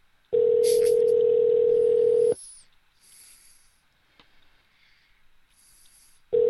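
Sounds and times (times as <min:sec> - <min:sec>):
phone ringback tone: 0:00.3 - 0:02.4.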